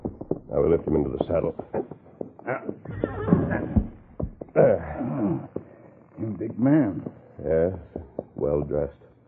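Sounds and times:
horse stamping with dull thumps and shuffling: 0.0 - 9.2
speech: 0.5 - 1.9, 2.5 - 3.4, 6.4 - 7.1
horse whinnying: 2.5 - 4.0.

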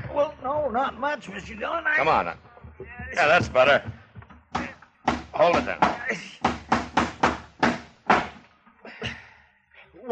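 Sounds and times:
speech: 0.2 - 2.5, 3.1 - 4.0, 5.4 - 6.5
hammer driving a nail into a rotten dry wooden door: 4.6 - 8.4.

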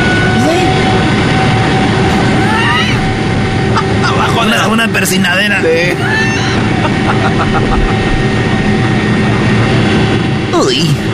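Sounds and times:
airplane engine roar heard from inside the passenger cabin: 0.0 - 11.1
faint constant tonal whine of airplane in flight: 0.0 - 11.1
laughter: 2.1 - 5.0, 5.8 - 8.3
speech: 4.8 - 6.4, 7.4 - 8.4, 10.6 - 11.1.

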